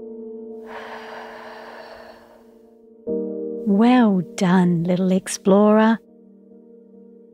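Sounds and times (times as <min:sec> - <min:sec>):
person breathing in and blowing out: 0:00.6 - 0:02.6
speech: 0:03.7 - 0:06.0.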